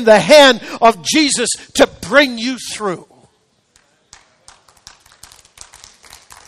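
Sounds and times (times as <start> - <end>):
speech: 0.0 - 3.1
sparse scattered handclaps from a crowd: 3.7 - 6.4.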